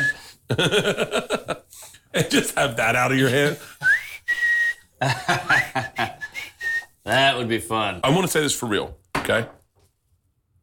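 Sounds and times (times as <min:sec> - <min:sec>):
person whistling: 0:00.0 - 0:00.4, 0:03.8 - 0:07.0
laughter: 0:00.5 - 0:02.6, 0:05.0 - 0:06.4
speech: 0:00.5 - 0:03.9, 0:05.0 - 0:06.2, 0:07.1 - 0:09.6.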